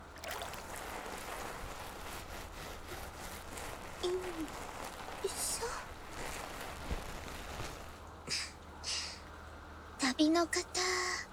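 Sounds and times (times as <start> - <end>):
hands being washed in water: 0.0 - 7.5
speech: 4.0 - 5.9, 10.2 - 11.0.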